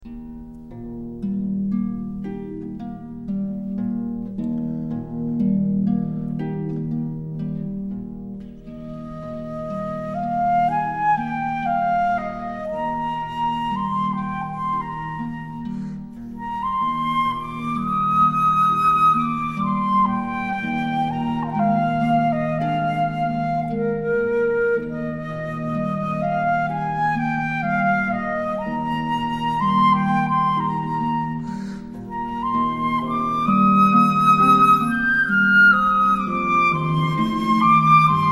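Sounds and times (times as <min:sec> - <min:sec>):
harp: 0:00.0 - 0:38.2
flute: 0:08.5 - 0:38.2.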